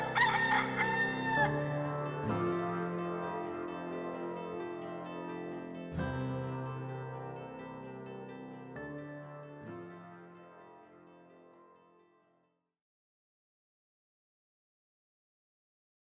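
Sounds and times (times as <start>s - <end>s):
rooster crowing: 0.0s - 1.7s
sustained musical chords: 0.0s - 11.2s.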